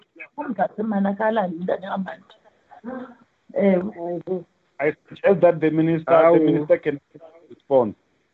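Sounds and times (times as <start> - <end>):
voices talking over a thin phone-like line on a remote call: 0.2 - 2.2, 2.8 - 7.9
speech: 0.4 - 8.0
laughter: 4.8 - 7.0.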